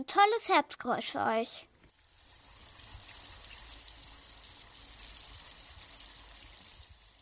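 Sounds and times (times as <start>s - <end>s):
speech: 0.0s - 1.7s
rain falling: 1.8s - 7.2s.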